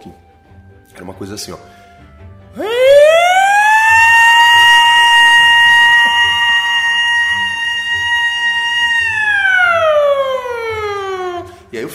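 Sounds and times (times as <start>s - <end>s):
speech: 1.0s - 1.8s, 2.6s - 2.8s
voice imitating a factory alarm: 2.6s - 11.5s.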